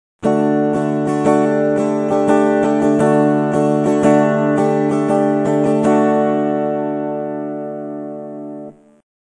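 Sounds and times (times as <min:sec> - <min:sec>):
Dsus4 guitar chord: 0:00.2 - 0:09.0.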